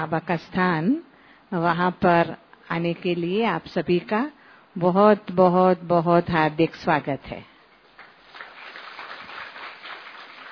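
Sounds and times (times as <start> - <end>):
speech: 0.0 - 7.5
audience clapping in welcome: 7.9 - 10.5.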